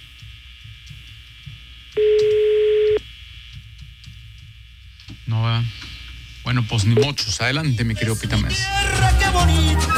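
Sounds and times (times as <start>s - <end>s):
low hum: 0.0s - 9.8s
telephone tone while dialing a number: 2.0s - 3.0s
speech: 6.5s - 9.6s.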